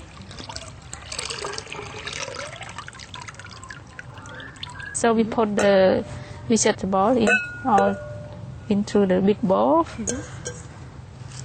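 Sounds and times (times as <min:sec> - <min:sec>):
water pouring and splashing out of a bowl: 0:00.0 - 0:05.0
speech: 0:05.0 - 0:08.1, 0:08.7 - 0:10.4.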